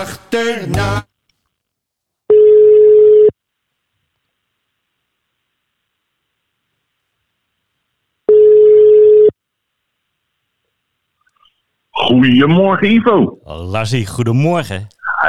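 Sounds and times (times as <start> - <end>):
speech: 0.0 - 1.1, 12.1 - 15.2
ringback tone of an outgoing phone call to an ambulance colleague in Friesland: 2.3 - 3.3, 8.3 - 9.4.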